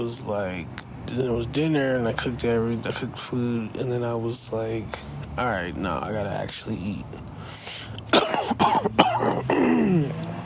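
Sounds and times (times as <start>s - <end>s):
speech: 0.0s - 7.8s, 8.6s - 10.3s
person coughing and throat clearing: 8.1s - 10.2s.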